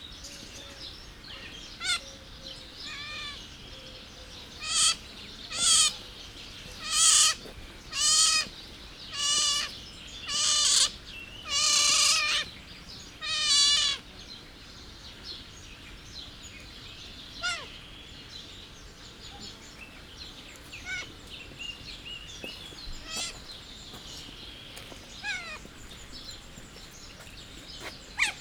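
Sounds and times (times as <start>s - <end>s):
Asian small-clawed otter calling: 1.8s - 2.1s, 4.6s - 6.1s, 6.7s - 8.5s, 9.1s - 12.5s, 13.2s - 14.1s, 17.4s - 17.7s, 20.6s - 21.8s, 22.4s - 28.4s.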